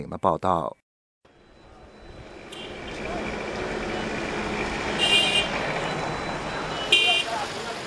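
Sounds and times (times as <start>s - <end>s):
busy street traffic engines and road noise: 1.3s - 7.8s
short bright car horn toots: 2.5s - 2.9s, 4.9s - 5.7s, 6.7s - 7.4s.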